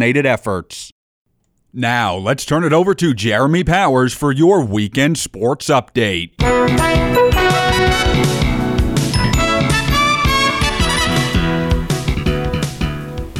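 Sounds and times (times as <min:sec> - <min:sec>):
speech: 0:00.0 - 0:01.0, 0:01.7 - 0:07.1
upbeat school fight song played by a band: 0:06.4 - 0:12.8.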